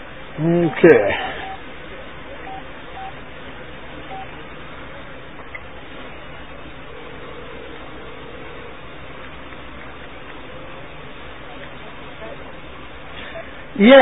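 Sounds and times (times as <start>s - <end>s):
speech: 0.4s - 1.4s, 13.8s - 14.0s
phone-line hiss: 0.4s - 1.7s, 6.7s - 9.1s
faint indistinct murmuring: 0.4s - 13.8s
telephone dialing beeps: 1.4s - 1.6s, 2.5s - 3.2s, 4.1s - 4.3s.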